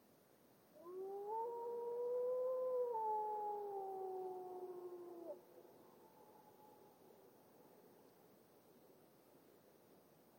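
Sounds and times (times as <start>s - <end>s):
lone grey wolf howling in a glacial valley: 0.8s - 5.4s.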